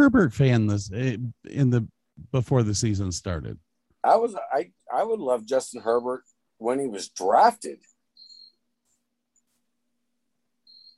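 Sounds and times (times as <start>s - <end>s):
speech: 0.0s - 7.9s
crickets chirping in short high-pitched trills: 8.2s - 8.6s, 10.7s - 10.9s.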